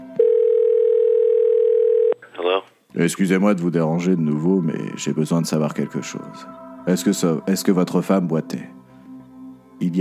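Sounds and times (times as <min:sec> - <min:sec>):
telephone dial tone: 0:00.2 - 0:02.2
speech: 0:03.0 - 0:08.8, 0:09.8 - 0:10.0.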